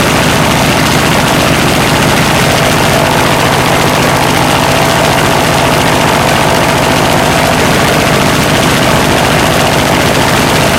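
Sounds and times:
engines running: 0.0 - 10.7.

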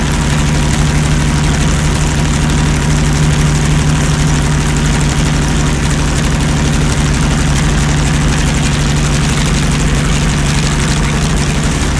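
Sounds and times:
Panther tank engine revving under load: 0.0 - 11.9.

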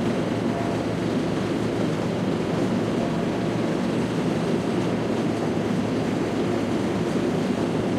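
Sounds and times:
tank engine running: 0.0 - 7.9.

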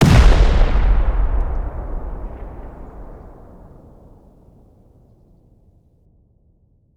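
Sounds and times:
C4 explosion: 0.0 - 4.2.

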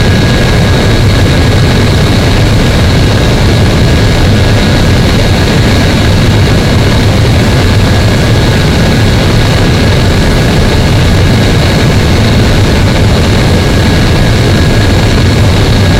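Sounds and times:
jet engine: 0.0 - 15.9.

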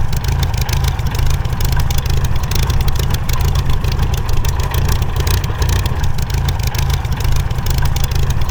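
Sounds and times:
Rolls Royce Merlin aircraft engines: 0.0 - 8.5.

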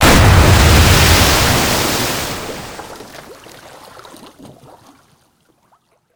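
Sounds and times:
water explosions: 0.0 - 3.4.

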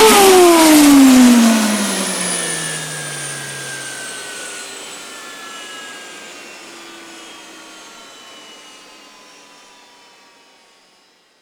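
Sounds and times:
AI-9V aircraft auxiliary power unit shutting down: 0.0 - 5.0.

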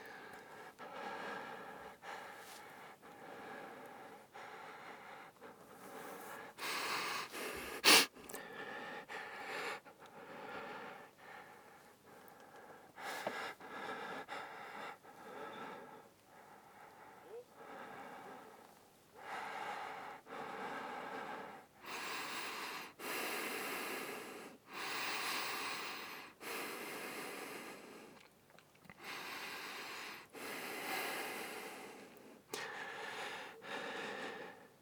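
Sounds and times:
breath: 0.0 - 28.3, 28.9 - 34.8.

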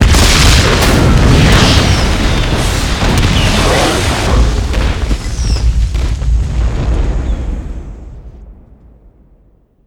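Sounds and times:
ammunition dump explosion: 0.0 - 9.8.

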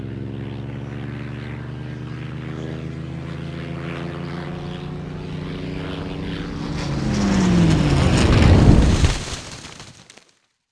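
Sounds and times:
plane crash: 4.2 - 10.2.

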